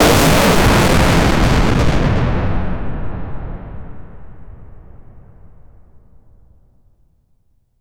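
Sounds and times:
powerful explosion echoing through a futuristic city: 0.0 - 5.9.

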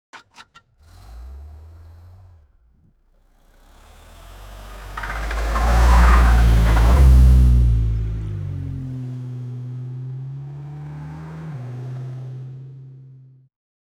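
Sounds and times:
car crash: 0.2 - 11.1
car stopping fast: 0.4 - 13.5.

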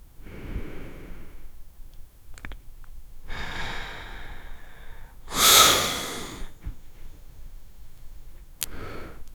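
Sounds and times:
person inhaling while smoking a cigarette: 0.2 - 1.5, 3.3 - 6.6, 8.6 - 9.3.

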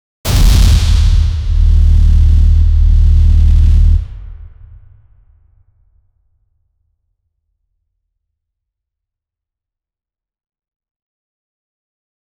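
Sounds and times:
epic bass hit: 0.3 - 4.8.

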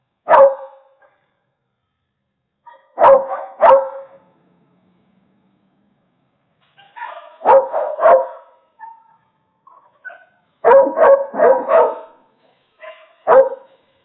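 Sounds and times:
dog barking: 0.3 - 1.2, 2.7 - 4.2, 6.8 - 13.8.

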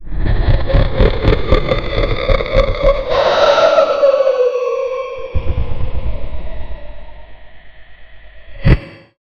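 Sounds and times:
ferocious demon laughter: 0.2 - 5.8.

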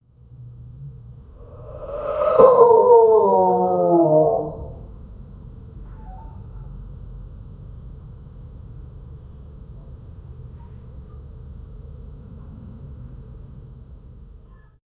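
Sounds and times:
quiet murmurs of awe: 1.4 - 4.9.

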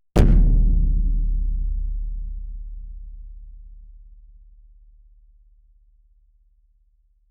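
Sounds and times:
large drum struck with a boom: 0.2 - 2.5.

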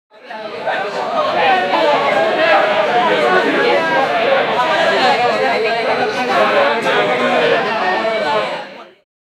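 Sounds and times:
crowded bar ambience: 0.1 - 9.0.

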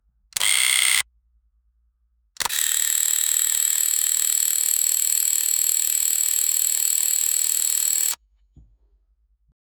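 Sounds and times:
rapid camera shutter clicks: 0.4 - 1.0, 2.4 - 8.2.

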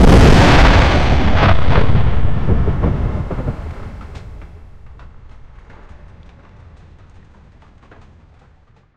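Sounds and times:
ship cannon firing: 0.0 - 5.9.

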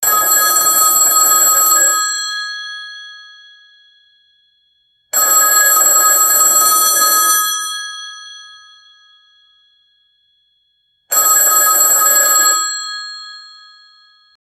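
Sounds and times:
classic phone ringing: 0.0 - 2.5, 5.2 - 8.0, 11.1 - 14.3.

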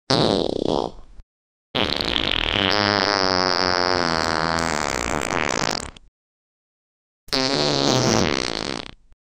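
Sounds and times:
male loud fart as a prank: 0.1 - 1.0, 1.8 - 6.0, 7.3 - 9.1.

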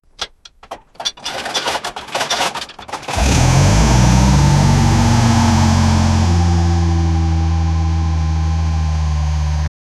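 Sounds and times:
old 1958 Chevy Bel Air: 3.1 - 9.7.

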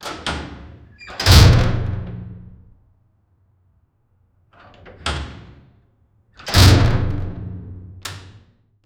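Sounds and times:
heavy metallic door creaking: 0.0 - 2.7, 4.6 - 5.8, 6.4 - 8.5.

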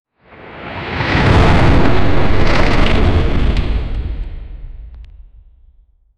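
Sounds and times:
dramatic whoosh: 0.7 - 5.6.

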